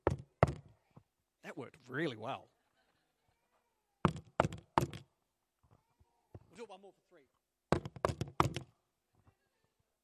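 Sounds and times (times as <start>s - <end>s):
knocks or taps on a hard surface: 0.0s - 0.7s, 4.0s - 5.0s, 7.7s - 8.7s
speech: 1.5s - 2.6s, 6.6s - 7.4s.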